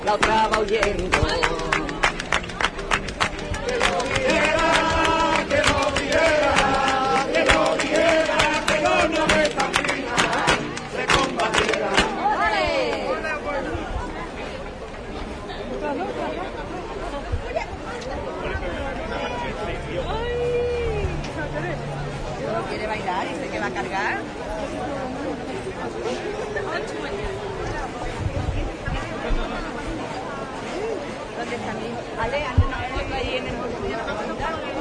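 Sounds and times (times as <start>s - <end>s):
dense crowd of spectators murmuring and chattering: 0.0s - 34.7s
speech: 0.1s - 1.8s.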